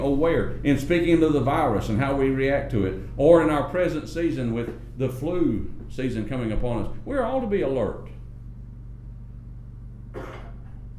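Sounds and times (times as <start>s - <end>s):
speech: 0.0s - 8.1s
steady low hum: 0.0s - 10.9s
person coughing: 10.1s - 10.8s.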